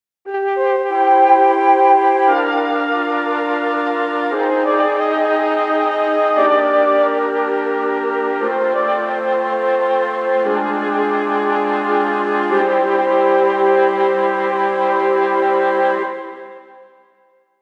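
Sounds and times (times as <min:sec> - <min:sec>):
Mellotron flutes: 0:00.3 - 0:17.4.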